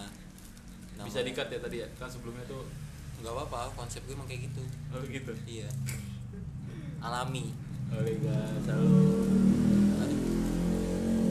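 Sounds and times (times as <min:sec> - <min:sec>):
speech: 0:01.0 - 0:06.1, 0:07.0 - 0:09.8
motorcycle engine passing on street: 0:03.7 - 0:11.3.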